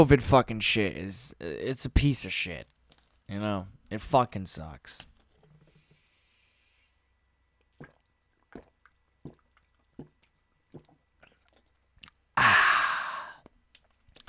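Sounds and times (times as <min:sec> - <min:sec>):
speech: 0:00.0 - 0:02.7, 0:03.3 - 0:05.1
person gulping water: 0:07.7 - 0:12.3
loud breathy exhale of relief: 0:12.4 - 0:13.4.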